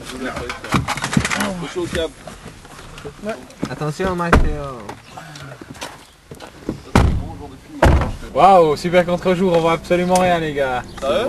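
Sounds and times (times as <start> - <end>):
chatter: 0.0 - 11.2
speech: 0.1 - 5.1, 8.4 - 11.2
faint shuffling: 1.2 - 11.2
heavy car door slamming shut: 4.1 - 4.8, 6.7 - 8.4.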